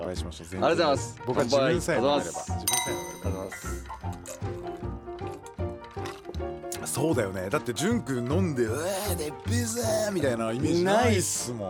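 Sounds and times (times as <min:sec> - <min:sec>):
speech: 0:00.1 - 0:04.6, 0:06.9 - 0:11.6
sparkling water being poured into a glass for a toast: 0:02.7 - 0:03.9.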